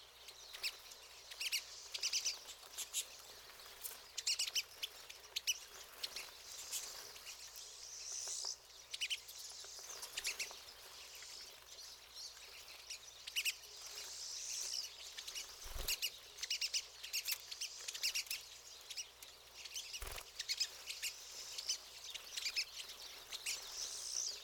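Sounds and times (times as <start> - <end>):
pine siskins twittering together in a buzzy chorus: 0.0 - 24.4.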